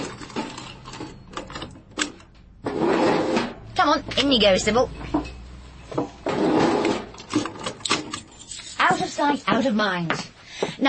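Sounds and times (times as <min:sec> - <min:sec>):
drawer shoved shut: 0:02.6 - 0:03.6, 0:06.2 - 0:08.1
speech: 0:04.1 - 0:05.2, 0:09.6 - 0:10.8.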